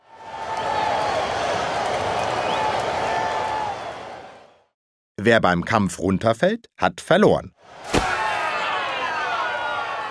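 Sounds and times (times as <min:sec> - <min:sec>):
spectators cheering on knights at a joust: 0:00.0 - 0:04.7, 0:07.6 - 0:10.1
speech: 0:05.2 - 0:08.1.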